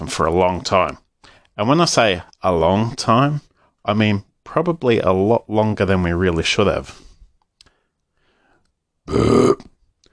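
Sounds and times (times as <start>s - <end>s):
speech: 0.1s - 1.0s, 1.6s - 7.1s, 9.1s - 9.7s
loud burp: 9.1s - 9.8s.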